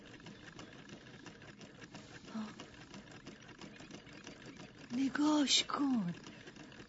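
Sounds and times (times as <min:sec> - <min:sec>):
water pump motor running: 0:00.0 - 0:06.8
speech: 0:05.0 - 0:06.2.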